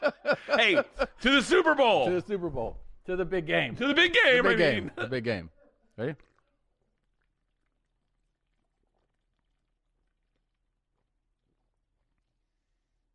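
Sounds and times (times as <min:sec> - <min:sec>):
laughter: 0:00.0 - 0:01.8, 0:03.9 - 0:05.4
speech: 0:00.6 - 0:06.3
alcoholic drink being poured: 0:06.0 - 0:13.0
small slurps sipping an alcoholic drink: 0:06.1 - 0:13.1.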